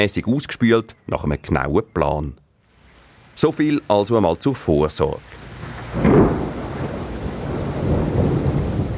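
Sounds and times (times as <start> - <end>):
speech: 0.0 - 2.4, 3.4 - 6.3
rain: 2.7 - 8.9
rushing wind: 5.3 - 8.9
deep roll of thunder: 5.4 - 8.9.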